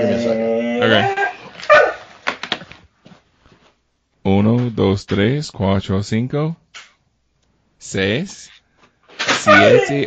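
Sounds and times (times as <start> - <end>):
speech: 0.0 - 1.7, 4.8 - 6.6, 7.8 - 8.6, 9.4 - 10.0
dog barking at a cat: 1.7 - 2.1, 9.5 - 10.0.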